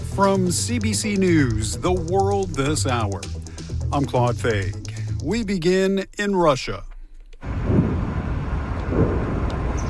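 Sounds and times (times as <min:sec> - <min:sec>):
speech: 0:00.2 - 0:06.9
distant explosions rumbling: 0:07.5 - 0:09.8.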